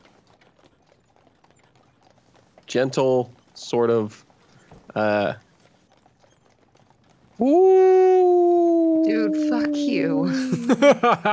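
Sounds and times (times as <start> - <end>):
speech: 2.7 - 4.3, 5.0 - 5.4, 7.4 - 8.1, 9.0 - 11.3
person imitating a howl in the woods: 7.4 - 10.9
laughter: 10.2 - 11.3.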